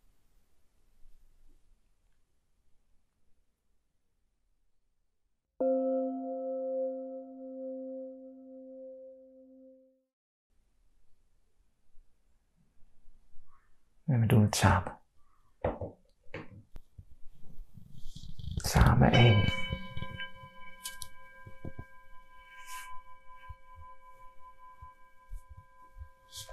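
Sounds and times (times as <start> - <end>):
meditation bell struck to begin a silent group meditation: 5.6 - 9.9, 19.1 - 26.4
speech: 14.1 - 15.0, 19.0 - 19.6.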